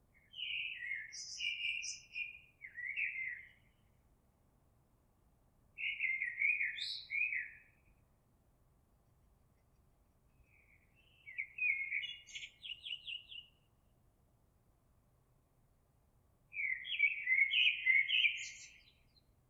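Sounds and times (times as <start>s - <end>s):
Eurasian blackbird song of mellow fluty warbled phrases: 0.1s - 4.0s, 5.8s - 8.0s, 10.3s - 13.8s, 16.5s - 19.4s.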